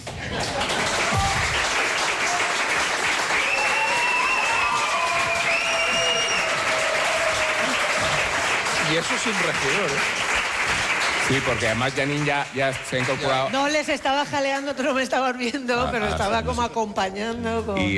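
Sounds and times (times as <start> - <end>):
crowd applauding: 0.0 - 14.2
whistles: 3.3 - 6.6
speech: 9.0 - 10.2, 11.3 - 17.9.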